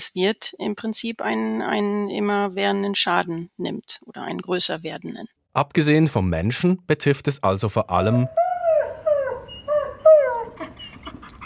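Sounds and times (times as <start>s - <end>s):
speech: 0.1s - 8.6s
dog howling and whimpering: 8.3s - 11.2s.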